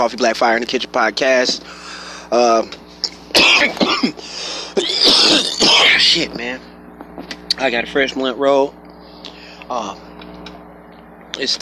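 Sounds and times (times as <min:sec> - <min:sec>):
speech: 0:00.0 - 0:06.7, 0:07.6 - 0:08.8, 0:09.7 - 0:10.0, 0:11.4 - 0:11.5
person coughing: 0:03.3 - 0:06.2.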